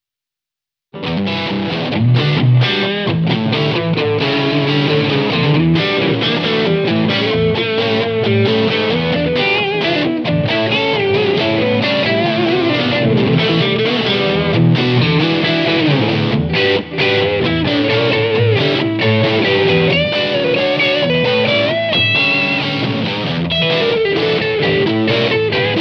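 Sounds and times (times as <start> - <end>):
MAXON OD9PRO+ bluesy boost pedal tone: 1.0 - 25.7.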